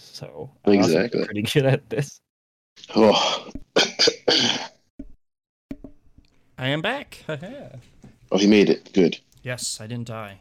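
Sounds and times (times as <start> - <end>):
speech: 0.2 - 2.2, 2.8 - 4.7, 6.6 - 10.4
softer shorter coughs or throat sounds: 2.8 - 4.8
harsh loud coughs: 2.9 - 4.8.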